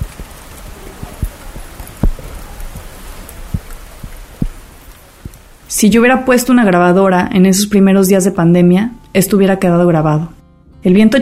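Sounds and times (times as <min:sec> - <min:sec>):
raindrops tapping on audio recorder buttons: 0:00.0 - 0:05.8
steady hiss of rain: 0:00.0 - 0:10.3
speech: 0:05.7 - 0:11.2.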